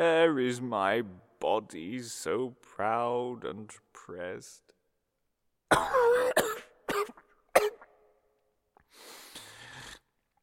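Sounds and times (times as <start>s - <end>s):
speech: 0.0s - 4.7s, 5.7s - 6.5s
person coughing harshly: 5.7s - 7.9s.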